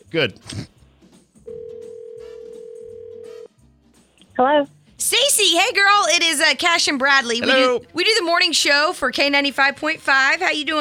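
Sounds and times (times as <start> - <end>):
quiet music: 0.0 - 10.7
speech: 0.1 - 0.7, 4.4 - 10.7
telephone ring tone of a call placed by radio hosts: 1.5 - 3.5.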